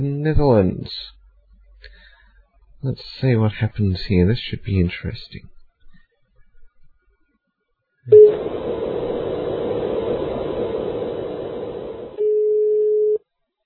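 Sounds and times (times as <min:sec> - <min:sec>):
speech: 0:00.0 - 0:01.2, 0:02.8 - 0:05.5
short call connection tone: 0:08.1 - 0:08.4, 0:12.2 - 0:13.2
steady loud telephone tone: 0:08.1 - 0:08.5, 0:12.1 - 0:13.2
hissy telephone line noise: 0:08.1 - 0:12.2
Skype dialing a phone number: 0:12.2 - 0:13.2.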